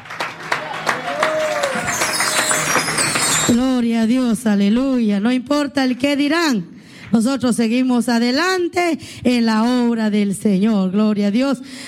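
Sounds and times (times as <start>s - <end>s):
audience clapping hands: 0.0s - 3.6s
high whistle-like tone: 1.7s - 3.7s
speech: 3.5s - 11.8s.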